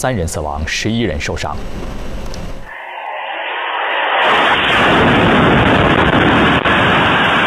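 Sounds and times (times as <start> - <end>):
speech: 0.0 - 2.1
sustained roaring rumble after the blast: 1.6 - 7.4
missile explosion striking a residential neighbourhood at night: 2.7 - 7.4.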